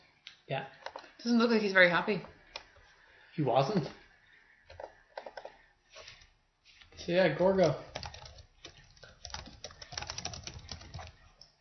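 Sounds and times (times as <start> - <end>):
speech: 0.5 - 2.4, 3.4 - 4.0, 7.1 - 7.9
typing on a computer keyboard: 7.5 - 11.5.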